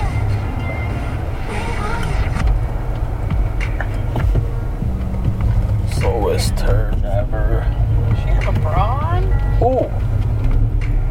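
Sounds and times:
cars rolling past in intermittent rain: 0:00.0 - 0:11.0.

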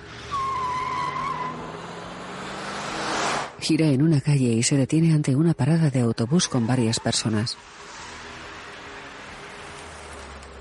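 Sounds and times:
car tires squealing while reversing: 0:00.0 - 0:03.6, 0:06.1 - 0:10.5
speech: 0:03.6 - 0:08.0.

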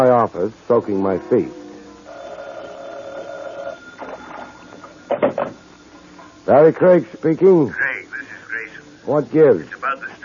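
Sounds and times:
speech: 0:00.0 - 0:01.6, 0:06.5 - 0:07.8, 0:09.0 - 0:09.8
telephone ringing: 0:01.1 - 0:06.0.

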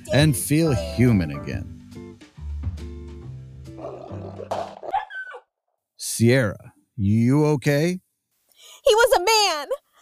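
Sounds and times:
speech: 0:00.1 - 0:01.8, 0:06.2 - 0:08.0, 0:08.8 - 0:09.8
wolf snarling and roaring: 0:03.7 - 0:05.1.

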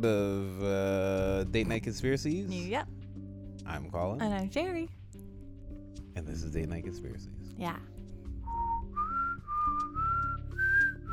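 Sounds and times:
speech: 0:00.0 - 0:03.0, 0:03.6 - 0:05.0, 0:06.2 - 0:08.0
person whistling a short bright tune: 0:08.4 - 0:11.1.

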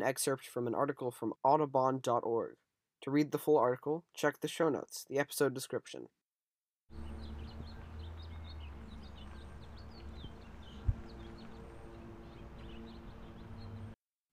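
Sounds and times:
speech: 0:00.0 - 0:06.2
steady low hum: 0:06.9 - 0:13.9
House Finch chirping and twittering: 0:06.9 - 0:14.0.

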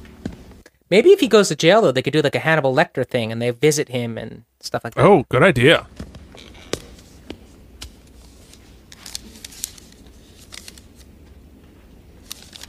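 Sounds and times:
speech: 0:00.9 - 0:06.1
paper rustling and crinkling while handled: 0:06.7 - 0:11.1, 0:12.2 - 0:12.6.

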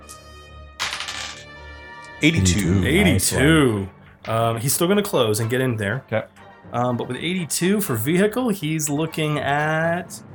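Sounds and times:
pair of percentage dice clattering across a hard surface: 0:00.8 - 0:01.5
speech: 0:02.2 - 0:10.3.

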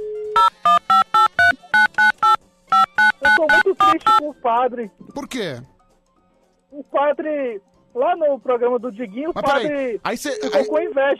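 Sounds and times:
short electronic telephone dialing beeps: 0:00.4 - 0:04.2
speech: 0:04.0 - 0:05.7, 0:06.7 - 0:11.1.

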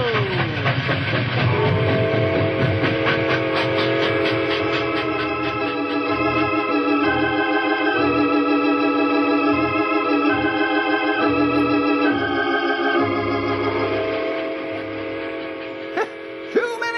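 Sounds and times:
locomotive train rumbling down tracks: 0:00.0 - 0:16.9
rhythmic clanking train wheel beats: 0:00.0 - 0:16.9
sustained whistle-like tone: 0:01.5 - 0:06.6, 0:13.0 - 0:16.9.

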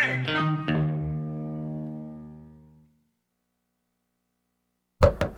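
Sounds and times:
sustained musical chord ringing: 0:00.2 - 0:03.0
sharp knocks on a door: 0:05.0 - 0:05.3.

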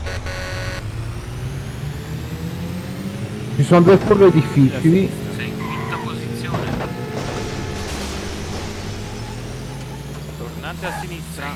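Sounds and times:
car horn blaring in racing game: 0:00.0 - 0:00.8, 0:03.6 - 0:07.9
vehicle engine drone accelerating: 0:00.0 - 0:11.5
speech: 0:03.6 - 0:05.3, 0:10.8 - 0:11.5.

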